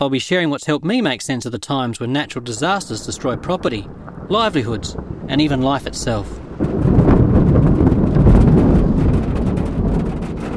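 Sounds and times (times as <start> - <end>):
speech: 0.0 - 7.8
heavy rain on a galvanised iron roof: 2.2 - 10.5.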